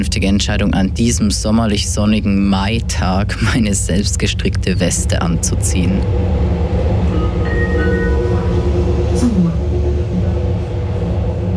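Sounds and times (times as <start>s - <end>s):
speech: 0.0s - 6.8s
train rumbling through a railway station: 0.0s - 11.5s
indistinct voices murmuring at a railway station: 4.7s - 11.5s.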